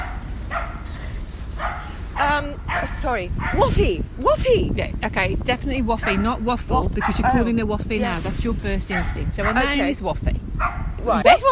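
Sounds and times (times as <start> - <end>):
female dog barking: 0.0 - 0.8, 1.6 - 3.7, 6.0 - 6.4, 7.0 - 7.4, 8.9 - 9.8, 10.6 - 11.0
low rumbling background: 0.0 - 11.5
speech: 2.4 - 11.5.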